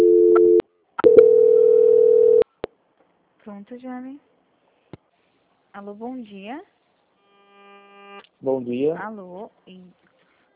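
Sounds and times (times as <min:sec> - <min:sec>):
steady mid-pitched phone line tone during a call transfer: 0:00.0 - 0:02.5
speech: 0:03.6 - 0:04.3, 0:05.8 - 0:06.7, 0:08.4 - 0:10.0.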